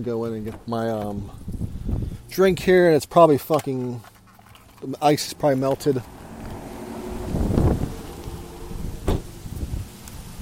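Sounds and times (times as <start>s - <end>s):
speech: 0.0s - 1.6s, 2.3s - 4.1s, 4.8s - 6.2s
strong wind buffeting a microphone outdoors on a very windy day in Houston: 1.1s - 2.8s, 5.4s - 10.4s.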